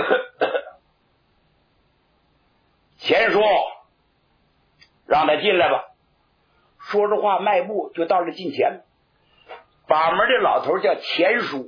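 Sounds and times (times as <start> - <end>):
man giving a light cough: 0.0 - 0.8
speech: 5.3 - 5.9, 6.9 - 8.9, 9.9 - 11.6.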